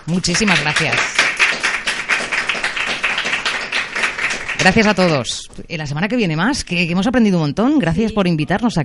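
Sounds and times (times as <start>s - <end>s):
crowd applause: 0.0s - 5.2s
speech: 0.1s - 1.2s, 4.6s - 8.8s.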